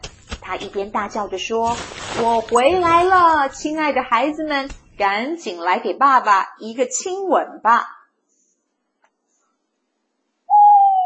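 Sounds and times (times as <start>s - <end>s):
speech: 0.5s - 8.0s
owl hooting: 10.5s - 11.0s.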